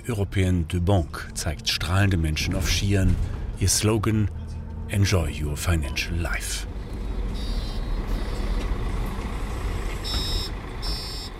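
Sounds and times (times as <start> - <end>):
city bus engine drone: 0.0 - 11.3
speech: 0.1 - 6.7
high-pitched electronic beeping: 7.4 - 8.6, 10.0 - 11.3.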